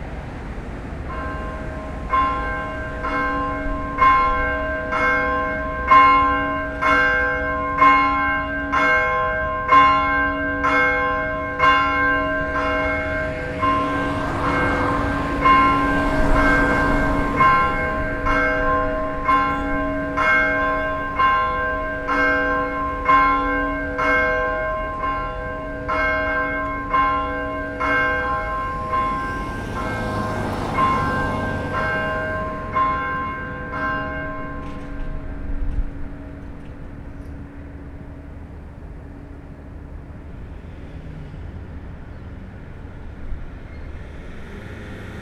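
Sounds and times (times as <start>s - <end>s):
Reformed church bells ringing: 0.9s - 39.9s.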